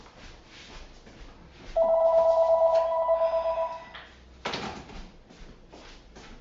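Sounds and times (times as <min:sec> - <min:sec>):
home telephone ringing loudly in an electronic trill: 0:01.8 - 0:03.9.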